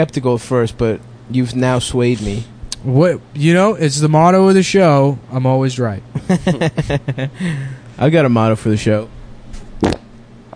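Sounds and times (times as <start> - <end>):
speech: 0.0 - 9.2, 9.8 - 10.0
laughter: 6.2 - 7.8
fart caught in a microphone wind guard: 9.8 - 10.1.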